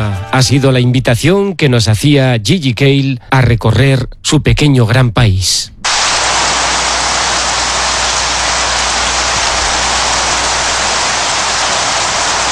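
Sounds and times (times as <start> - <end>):
speech: 0.2 - 6.0
heavy rain shower: 5.9 - 12.5.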